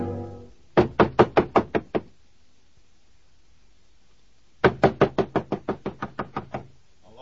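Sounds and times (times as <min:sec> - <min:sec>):
loud rapid knocking on a door: 0:00.7 - 0:02.1, 0:04.6 - 0:06.7.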